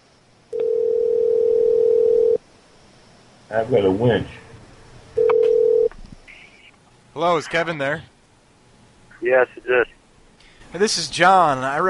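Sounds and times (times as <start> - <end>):
ringback tone of an outgoing phone call: 0.5 - 2.4, 5.2 - 5.9
speech: 3.5 - 4.4, 7.2 - 8.1, 9.2 - 10.0, 10.7 - 11.8.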